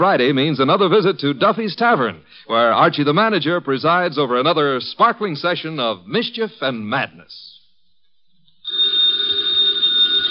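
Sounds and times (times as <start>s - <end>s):
speech: 0.0s - 7.5s
old-fashioned telephone bell ringing: 8.6s - 10.2s.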